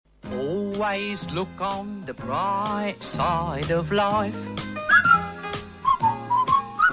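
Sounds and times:
fuller harmonic music backing: 0:00.2 - 0:06.9
speech: 0:00.8 - 0:04.7
person whistling a lively tune: 0:04.8 - 0:06.9.

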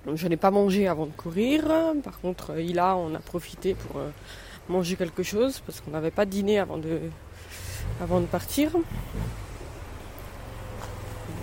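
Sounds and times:
speech: 0:00.0 - 0:09.5
scooter engine droning on a sidewalk: 0:07.2 - 0:11.4.

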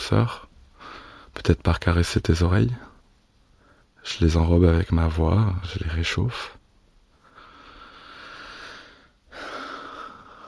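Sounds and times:
speech: 0:00.1 - 0:00.5, 0:01.4 - 0:02.9, 0:04.0 - 0:06.6
soft breathing close to the microphone: 0:00.7 - 0:01.4, 0:02.9 - 0:04.0, 0:07.1 - 0:10.4.

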